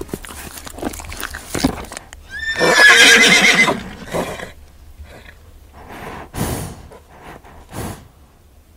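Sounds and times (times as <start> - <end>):
ridden horse whinnying: 2.3 - 4.6.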